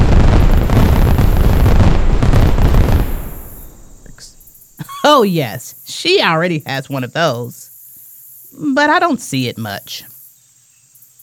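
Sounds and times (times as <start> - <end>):
volcanic eruption with rumbling blasts and crackling bursts: 0.0 - 4.4
speech: 5.2 - 7.7, 8.6 - 10.1.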